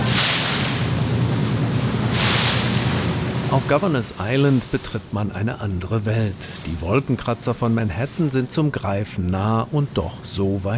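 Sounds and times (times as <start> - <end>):
sea spray hissing: 0.0 - 5.2, 6.2 - 8.6
ferry engine drone: 0.0 - 10.7
speech: 3.5 - 10.7.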